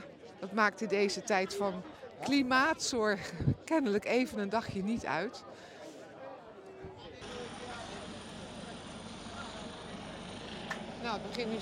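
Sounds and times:
speech: 0:00.4 - 0:05.7, 0:11.0 - 0:11.6
helicopter hovering overhead: 0:07.2 - 0:11.6.

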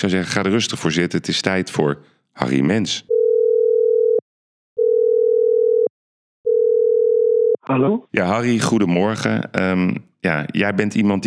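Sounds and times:
speech: 0:00.0 - 0:03.1, 0:07.7 - 0:11.2
ringback tone of an outgoing telephone call: 0:03.1 - 0:04.2, 0:04.8 - 0:05.9, 0:06.5 - 0:07.6.

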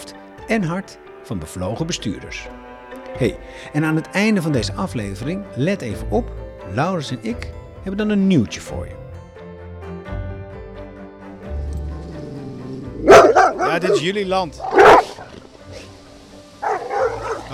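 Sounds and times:
speech: 0:00.5 - 0:09.0, 0:13.8 - 0:15.0
dogs barking: 0:12.2 - 0:16.0, 0:16.6 - 0:17.5.

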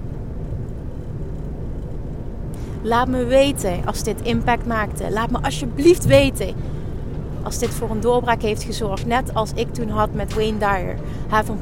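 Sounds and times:
speech: 0:02.8 - 0:06.8, 0:07.4 - 0:11.6
car interior driving noise: 0:04.1 - 0:06.8.

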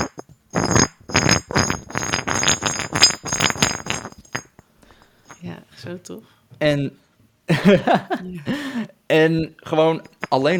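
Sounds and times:
apple-sized ceramic nut and small aubergine-sized ceramic bolt clinking and scraping as fitted together: 0:00.0 - 0:05.4, 0:10.0 - 0:10.5
speech: 0:05.9 - 0:10.5
laughter: 0:07.5 - 0:08.9.

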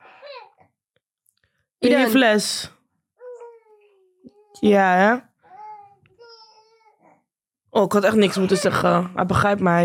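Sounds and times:
baby boy babbling: 0:00.0 - 0:00.7, 0:03.2 - 0:04.6, 0:05.4 - 0:07.3
speech: 0:01.8 - 0:02.8, 0:04.6 - 0:05.3, 0:07.8 - 0:09.8.

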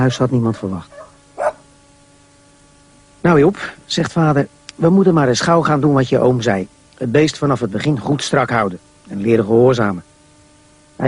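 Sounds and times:
speech: 0:00.0 - 0:01.1, 0:03.2 - 0:10.1
dog barking: 0:00.0 - 0:01.7.

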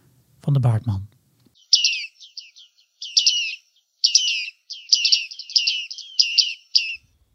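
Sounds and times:
speech: 0:00.4 - 0:01.1
bright high-pitched bird calls outdoors: 0:01.6 - 0:07.2.

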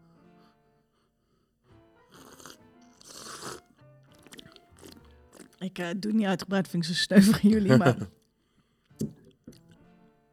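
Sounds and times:
wet slurps of a drink while tasting: 0:02.1 - 0:03.6, 0:04.2 - 0:05.6
speech: 0:05.6 - 0:08.2
laughter: 0:07.0 - 0:08.1.

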